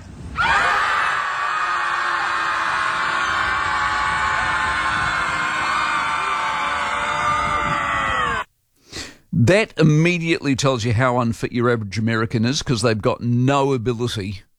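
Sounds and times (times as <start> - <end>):
crowd screaming: 0.3 - 8.5
speech: 9.5 - 14.5.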